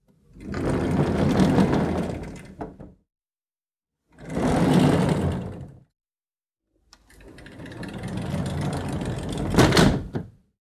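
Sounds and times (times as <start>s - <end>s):
sliding door squeaking: 0.4s - 2.8s, 4.2s - 5.8s, 7.2s - 10.2s.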